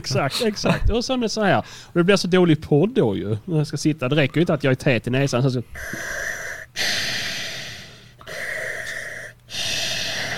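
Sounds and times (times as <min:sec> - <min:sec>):
speech: 0:00.0 - 0:06.3
voice imitating heavy mechanical breathing through a respirator mask: 0:05.8 - 0:10.3.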